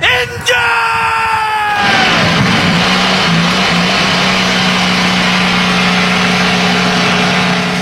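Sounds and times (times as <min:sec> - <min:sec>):
person yelling: 0:00.0 - 0:02.4
IndyCar race car engines starting at a Grand Prix: 0:01.6 - 0:07.7.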